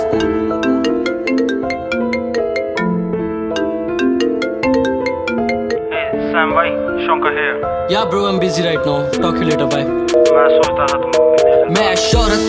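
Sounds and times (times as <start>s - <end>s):
mobile phone ringtone with bright electronic melody: 0.1s - 7.8s, 10.1s - 12.4s
speech: 7.9s - 12.4s.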